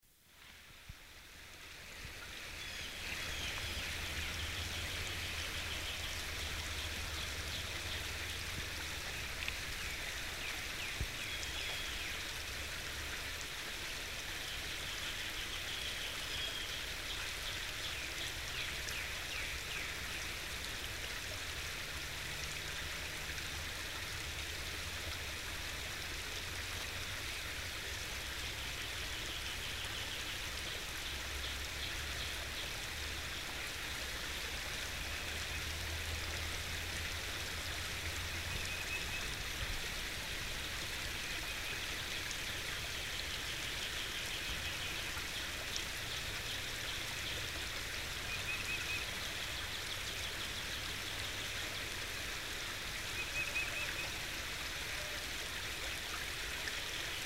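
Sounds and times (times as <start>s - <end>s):
running stream: 0.0s - 57.2s.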